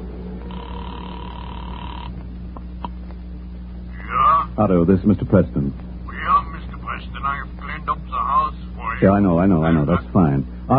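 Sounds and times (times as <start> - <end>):
constant low electrical drone: 0.0 - 10.7
phone tone humming in a phone booth: 0.1 - 2.2
speech: 4.6 - 5.9, 9.0 - 10.7.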